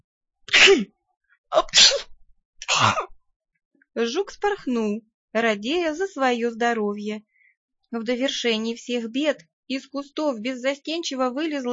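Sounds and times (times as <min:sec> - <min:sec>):
person sneezing: 0:00.5 - 0:00.9, 0:01.6 - 0:03.1
speech: 0:00.6 - 0:02.1, 0:02.7 - 0:03.1, 0:04.0 - 0:07.3, 0:07.9 - 0:11.7.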